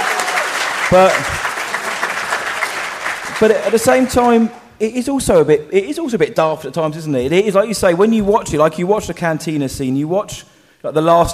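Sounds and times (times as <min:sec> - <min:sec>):
audience applause: 0:00.0 - 0:04.5
speech: 0:00.9 - 0:01.5, 0:03.4 - 0:11.3.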